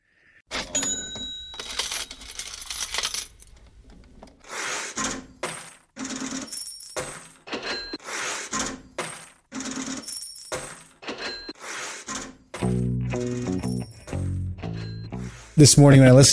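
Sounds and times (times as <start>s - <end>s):
cash register rings and clanks: 0.5s - 3.4s, 5.0s - 12.4s, 13.3s - 15.5s
jingling coins: 0.6s - 3.8s, 5.6s - 7.8s, 9.6s - 11.4s
rock song with deep bass line and band: 12.6s - 15.6s
speech: 15.6s - 16.3s.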